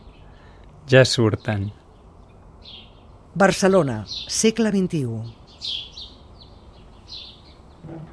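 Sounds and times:
birds chirping outdoors in Barcelona after a summer storm: 0.0 - 8.1
speech: 0.9 - 1.8, 3.4 - 5.9.

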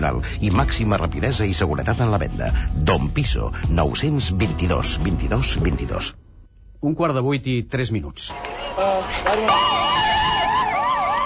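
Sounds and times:
speech: 0.0 - 6.2, 6.8 - 10.1
emergency sirens wailing after car bombing of embassy car north of Beirut: 8.3 - 11.2.

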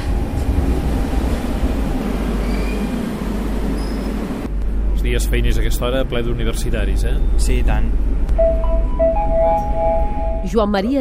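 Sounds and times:
metro train pulling into the station: 0.0 - 10.9
faint high squeals of metro train wheels or brakes: 2.4 - 3.0, 3.7 - 4.2
speech: 5.1 - 10.9.

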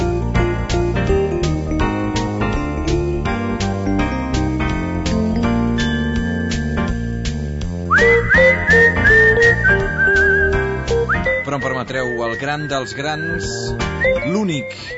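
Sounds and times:
steady instrumental backing with plucked rhythmic accompaniment: 0.0 - 14.9
clear high whistled melody: 5.8 - 14.9
speech: 12.2 - 14.9.

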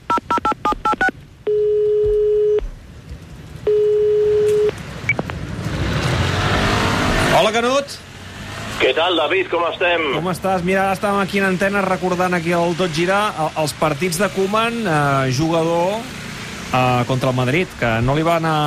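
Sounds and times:
long steady telephone ringing tones: 0.1 - 2.6, 3.7 - 4.8
keypad dialing beeps: 0.1 - 2.7, 3.7 - 5.2
rushing traffic-like noise: 2.6 - 18.6
speech: 9.0 - 18.6.

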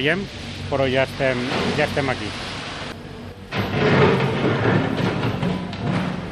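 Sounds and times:
speech: 0.0 - 2.5
excavator scraping concrete underwater: 1.2 - 2.3, 3.5 - 6.3
sharp knocks and clanks of excavator underwater: 3.5 - 6.3.

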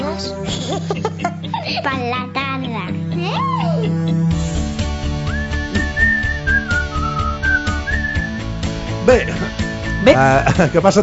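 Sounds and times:
steady rhythmic backing track: 0.0 - 11.0
laughter: 0.5 - 2.0, 10.0 - 11.0
bright catchy whistled jingle melody: 5.1 - 10.9
speech: 9.1 - 9.4, 10.1 - 11.0.

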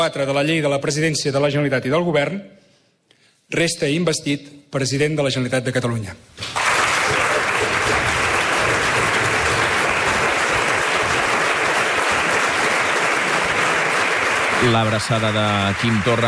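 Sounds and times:
speech: 0.0 - 2.6, 3.5 - 6.6, 14.7 - 16.2
Catalan Parliament members applauding after investiture vote: 6.4 - 16.2.

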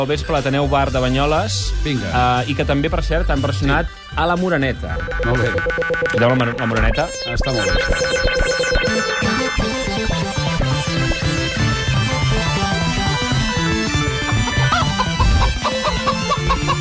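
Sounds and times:
speech: 0.0 - 10.6
busy loud song with thumping beat and dense instrumentation: 3.5 - 16.8
chicken clucks in a song: 14.2 - 16.8.

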